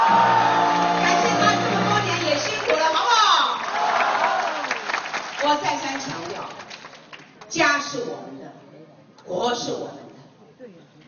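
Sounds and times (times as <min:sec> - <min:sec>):
crowd shouts and whoops at a campaign rally: 0:00.0 - 0:01.7, 0:03.7 - 0:04.8
crowd clapping at a campaign rally: 0:00.0 - 0:07.6.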